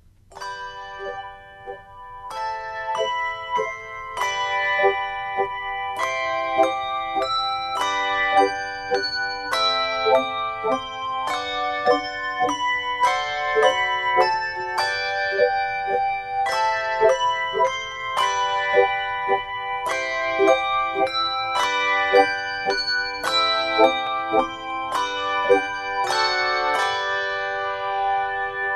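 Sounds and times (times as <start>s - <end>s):
handbells played with the echo ring technique: 0.4s - 28.7s.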